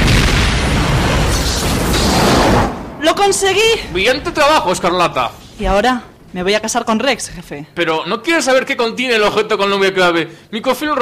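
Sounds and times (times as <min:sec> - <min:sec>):
children's firecracker exploding in an enemy trench: 0:00.0 - 0:04.3
speech: 0:03.2 - 0:11.0.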